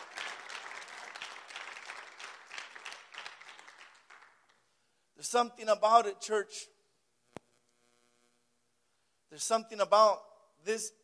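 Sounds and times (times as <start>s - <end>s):
congregation clapping: 0.0s - 4.8s
speech: 5.2s - 6.7s, 9.4s - 11.0s.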